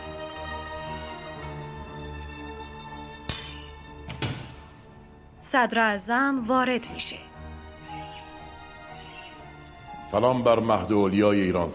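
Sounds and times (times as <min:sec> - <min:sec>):
coins clinking while being weighed: 0:01.9 - 0:04.9
speech: 0:05.5 - 0:07.3, 0:10.1 - 0:11.7.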